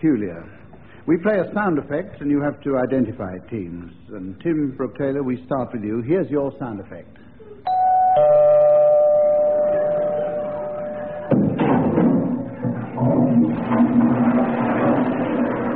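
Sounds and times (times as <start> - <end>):
speech: 0.0 - 7.2
doorbell chiming a two-note ding-dong: 7.7 - 11.3
thumping and rustling noise: 11.3 - 15.6.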